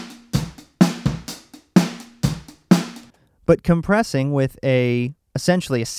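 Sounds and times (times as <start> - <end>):
uncompressed hi-hat: 0.0 - 3.1
uncompressed kick drum: 0.0 - 3.1
speech: 3.5 - 5.9.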